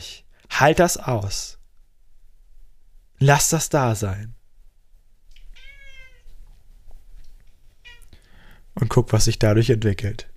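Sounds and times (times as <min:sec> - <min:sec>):
speech: 0:00.0 - 0:01.6, 0:03.2 - 0:04.4, 0:08.8 - 0:10.3
cat meowing: 0:05.3 - 0:06.4, 0:07.8 - 0:08.2.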